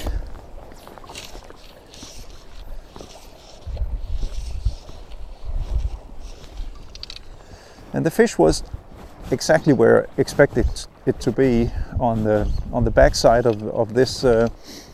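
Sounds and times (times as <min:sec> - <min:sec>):
wind buffeting the recorder outdoors: 0:00.0 - 0:14.9
speech: 0:08.0 - 0:14.9.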